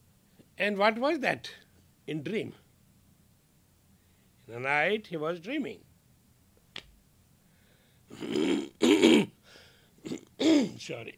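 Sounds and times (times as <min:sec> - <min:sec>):
speech: 0:00.6 - 0:02.6, 0:04.5 - 0:05.9, 0:10.4 - 0:11.1
person clearing throat: 0:08.1 - 0:09.4, 0:10.0 - 0:10.8.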